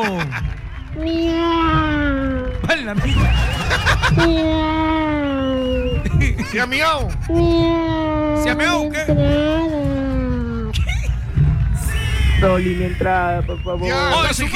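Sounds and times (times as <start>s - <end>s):
laughter: 0.0s - 1.0s, 2.4s - 14.5s
speech: 0.0s - 1.8s, 2.7s - 5.0s, 6.2s - 10.0s, 12.4s - 14.5s
person imitating a cat meow in an audio message: 1.0s - 2.6s, 4.1s - 6.0s, 7.3s - 10.7s.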